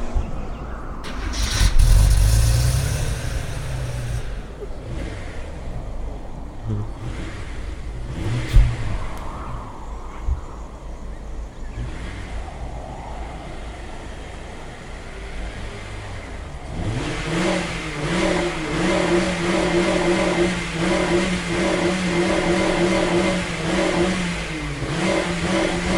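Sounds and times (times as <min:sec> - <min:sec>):
car engine starting and revving: 0:01.0 - 0:25.9.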